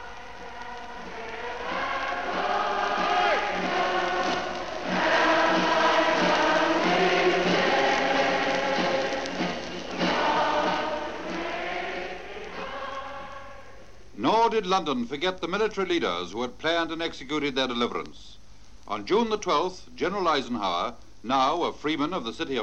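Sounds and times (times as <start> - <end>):
vast crowd in Whitehall London singing a patriotic song: 0.0 - 14.0
speech: 14.6 - 22.6.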